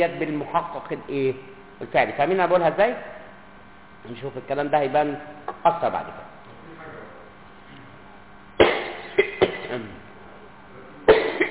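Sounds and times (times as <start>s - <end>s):
speech: 0.0s - 3.2s, 4.0s - 6.3s
person coughing hoarsely: 8.6s - 10.0s, 11.1s - 11.4s.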